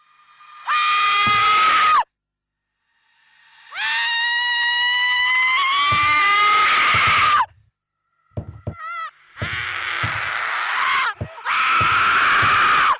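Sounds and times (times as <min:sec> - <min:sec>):
piercing screams from horror video game audio: 0:00.3 - 0:02.1, 0:03.7 - 0:07.5, 0:08.7 - 0:12.9.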